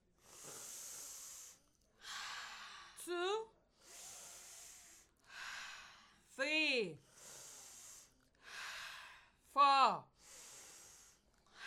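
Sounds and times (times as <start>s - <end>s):
slow deep breathing close to the mic: 0.2s - 3.1s, 3.7s - 6.3s, 7.0s - 9.4s, 10.2s - 11.6s.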